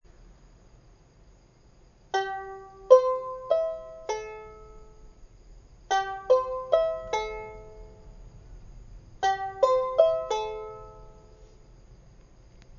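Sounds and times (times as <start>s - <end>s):
Polynesian ukulele playing: 2.2s - 5.0s, 5.9s - 8.0s, 9.2s - 11.3s.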